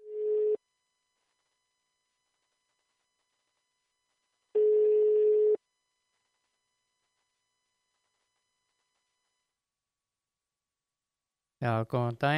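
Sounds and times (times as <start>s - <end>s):
telephone ringback tone while calling someone: 0.0s - 0.6s, 4.6s - 5.6s
speech: 11.6s - 12.3s.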